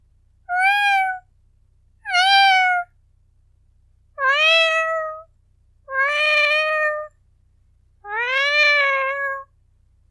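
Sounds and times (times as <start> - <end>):
faint low hum: 0.0 - 10.0
cat meowing: 0.5 - 1.3, 2.0 - 2.9, 4.2 - 5.3, 5.9 - 7.1, 8.0 - 9.5.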